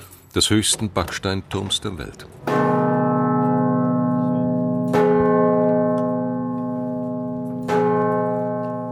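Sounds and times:
speech: 0:00.4 - 0:02.6
large church bells ringing in the bell chamber of St. Martin's brick tower in Landshut: 0:02.2 - 0:08.9.

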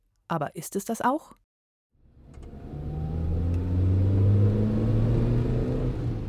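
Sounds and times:
speech: 0:00.3 - 0:01.5
car engine roaring along a country road at speed: 0:02.0 - 0:06.2.

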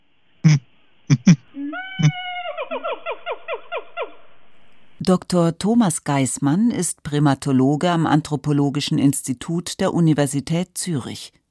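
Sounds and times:
excited gibbons making small clucking calls: 0:00.4 - 0:04.0
gibbons giving short squeaky falling calls: 0:01.1 - 0:04.2
speech: 0:05.0 - 0:11.4.

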